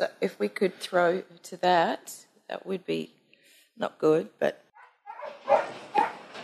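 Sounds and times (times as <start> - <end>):
speech: 0.0 - 3.2, 3.8 - 4.6
poisoned pup yelping and whimpering in distress: 5.1 - 6.2.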